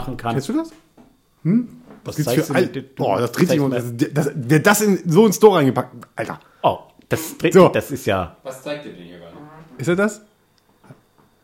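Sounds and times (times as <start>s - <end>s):
speech: 0.1s - 10.3s
leather chair creaking with a fart-like squeak: 9.2s - 9.9s.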